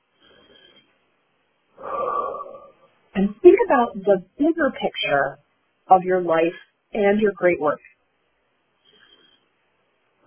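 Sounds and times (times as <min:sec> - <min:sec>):
deep breath: 0:00.2 - 0:01.0, 0:01.8 - 0:02.9, 0:08.8 - 0:09.5
speech: 0:03.2 - 0:07.9.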